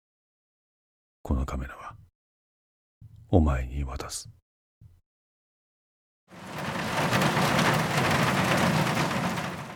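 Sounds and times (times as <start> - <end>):
speech: 1.2 - 2.0, 3.3 - 4.4
heavy rain pouring: 6.3 - 9.7.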